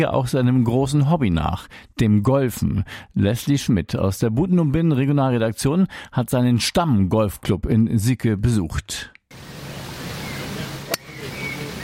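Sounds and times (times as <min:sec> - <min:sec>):
speech: 0:00.0 - 0:09.4
water splashing and babbling in a golf course pond: 0:09.3 - 0:11.8.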